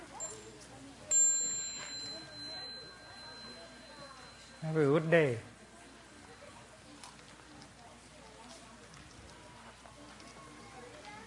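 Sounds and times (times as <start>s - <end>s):
meditation bell struck with clear ringing tone: 0.0s - 0.5s, 1.1s - 5.2s
faint indistinct murmur: 0.0s - 11.2s
speech: 4.6s - 5.5s.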